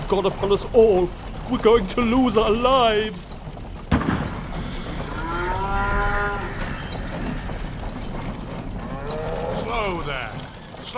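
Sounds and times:
steady rumbling background: 0:00.0 - 0:10.9
speech: 0:00.1 - 0:03.4, 0:09.7 - 0:10.9
cow mooing on the road: 0:04.6 - 0:07.9, 0:08.8 - 0:10.0.

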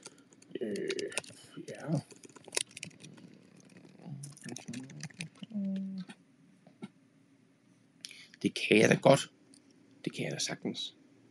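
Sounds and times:
fingers typing on a computer keyboard: 0:00.0 - 0:01.4, 0:02.0 - 0:05.6
brief low voice sound: 0:00.6 - 0:02.0, 0:04.0 - 0:06.1, 0:08.4 - 0:09.2
speech: 0:00.6 - 0:02.2, 0:08.5 - 0:09.4, 0:10.1 - 0:11.0.

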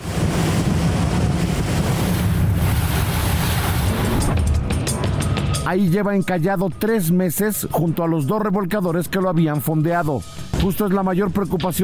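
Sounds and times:
wave splash: 0:00.0 - 0:04.4
wind buffeting the microphone: 0:00.0 - 0:04.4
powerful Defender motor launch engine roaring on open sea: 0:00.0 - 0:04.7
speech: 0:05.7 - 0:11.8.

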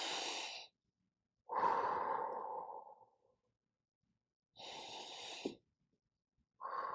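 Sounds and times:
person taking slow deep breaths: 0:00.0 - 0:00.7, 0:01.5 - 0:03.3, 0:04.6 - 0:05.6, 0:06.6 - 0:06.9.

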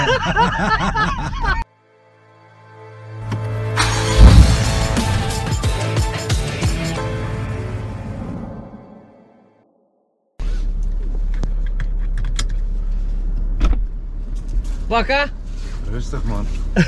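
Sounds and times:
laughter: 0:00.0 - 0:01.6
speech: 0:00.1 - 0:01.7, 0:14.9 - 0:16.8
car engine and road rumble while driving: 0:03.2 - 0:09.0, 0:10.4 - 0:16.8.

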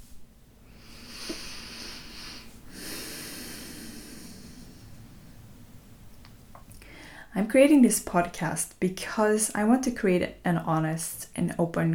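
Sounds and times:
deep breath: 0:00.7 - 0:05.3, 0:06.8 - 0:07.3
speech: 0:07.4 - 0:11.9.

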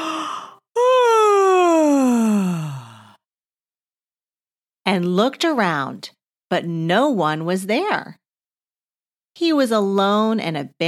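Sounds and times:
long voiced yawn: 0:00.0 - 0:03.2
speech: 0:04.9 - 0:08.2, 0:09.4 - 0:10.8.

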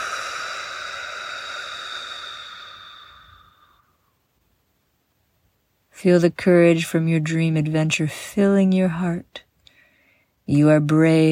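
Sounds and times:
deep breath in through nose, out through mouth: 0:00.0 - 0:04.2, 0:09.6 - 0:10.4
speech: 0:06.0 - 0:09.5, 0:10.5 - 0:11.3.

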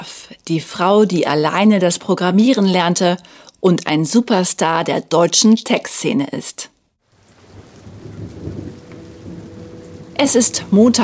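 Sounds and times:
speech: 0:00.5 - 0:06.7, 0:10.2 - 0:11.0
low rumble of thunder: 0:07.0 - 0:11.0
steady cold rain pouring down at a schoolyard: 0:07.0 - 0:11.0.

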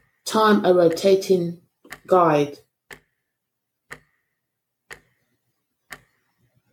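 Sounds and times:
clock ticking: 0:00.0 - 0:06.7
speech: 0:00.3 - 0:02.6.

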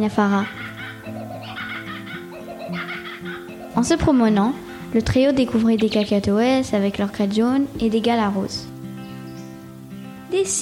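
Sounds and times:
speech: 0:00.0 - 0:00.6, 0:03.8 - 0:08.7, 0:10.3 - 0:10.5
kookaburra laughing call: 0:00.3 - 0:04.0.

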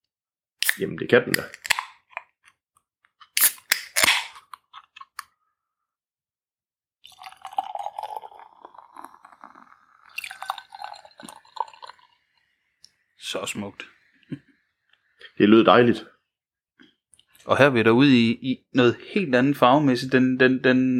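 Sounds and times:
loud hissing crack of a beer can tab being pulled: 0:00.6 - 0:01.9, 0:03.3 - 0:04.4
sharp metallic clicks of a beer can tab: 0:00.6 - 0:02.2
speech: 0:00.8 - 0:01.6, 0:13.5 - 0:14.4, 0:15.4 - 0:16.1, 0:17.5 - 0:20.9
fruited sour beer fizzing and gurgling as poured into a glass: 0:07.0 - 0:14.1.

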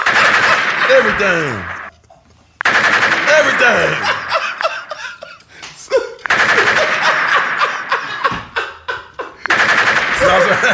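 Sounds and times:
people laughing: 0:00.0 - 0:01.6, 0:03.4 - 0:10.7
automatic gunfire fired into a dead body: 0:00.0 - 0:01.9, 0:02.6 - 0:04.2, 0:06.3 - 0:08.0, 0:09.5 - 0:10.7
speech: 0:00.9 - 0:01.7, 0:03.3 - 0:04.2, 0:10.3 - 0:10.7.

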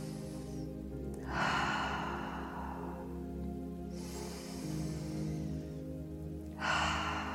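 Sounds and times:
slow deliberate breaths during a square-breathing exercise: 0:00.0 - 0:07.3.

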